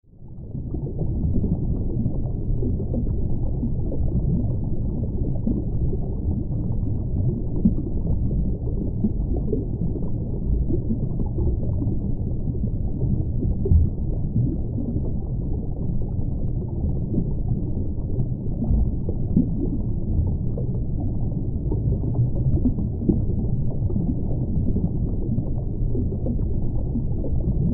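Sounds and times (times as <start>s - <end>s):
underwater ambience: 0.1s - 27.7s.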